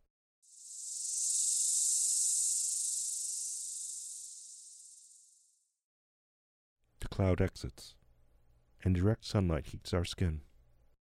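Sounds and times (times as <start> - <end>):
chorus of cicadas buzzing in the woods: 0.4 - 5.7
speech: 7.2 - 8.0, 8.8 - 10.5.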